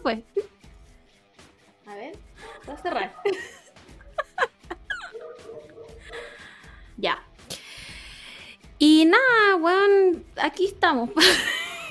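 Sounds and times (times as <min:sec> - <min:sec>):
speech: 0:00.0 - 0:00.4, 0:01.9 - 0:03.6, 0:07.0 - 0:07.3, 0:08.8 - 0:11.6
dogs barking outside a window: 0:02.3 - 0:06.7
laughter: 0:03.1 - 0:05.2, 0:11.2 - 0:11.8.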